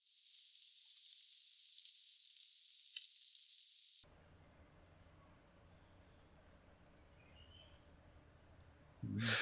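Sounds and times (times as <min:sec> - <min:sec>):
faint broadband hiss: 0:00.0 - 0:09.4
Sakhalin leaf warbler singing: 0:00.6 - 0:00.9, 0:03.0 - 0:03.4, 0:04.8 - 0:05.5, 0:06.6 - 0:08.5.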